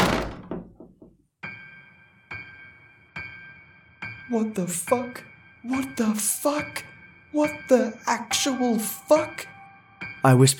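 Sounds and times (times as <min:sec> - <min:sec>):
bathroom door slamming shut: 0:00.0 - 0:01.0
ringing knocks: 0:00.0 - 0:01.3
speech: 0:04.3 - 0:09.5, 0:10.2 - 0:10.5.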